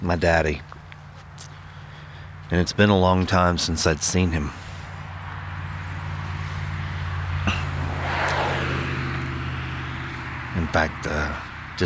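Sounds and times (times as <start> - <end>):
speech: 0.0 - 0.8, 2.5 - 4.6, 10.8 - 11.8
road traffic on a country road: 0.0 - 11.8
vehicle passing on a country road: 5.0 - 11.8.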